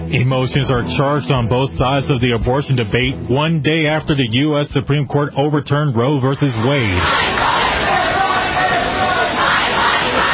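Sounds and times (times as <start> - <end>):
speech: 0.1 - 7.5
protest crowd in the United States shouting over Roe v. Wade ruling: 6.4 - 10.3.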